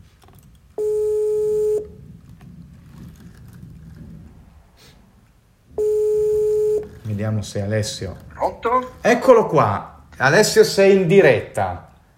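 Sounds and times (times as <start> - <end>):
electronic ringback tone of an outgoing audio call: 0.8 - 2.0, 5.8 - 7.0
speech: 7.2 - 11.9.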